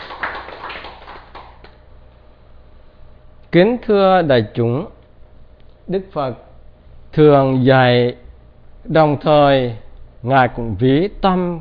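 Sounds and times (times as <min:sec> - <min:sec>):
audience applause at a Buddhist dharma talk: 0:00.0 - 0:01.8
speech: 0:03.5 - 0:05.0, 0:05.9 - 0:06.5, 0:07.2 - 0:08.2, 0:08.8 - 0:11.5.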